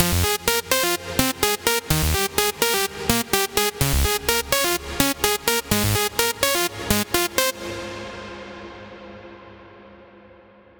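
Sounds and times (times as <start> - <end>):
big room progressive house lead melody: 0.0 - 8.1.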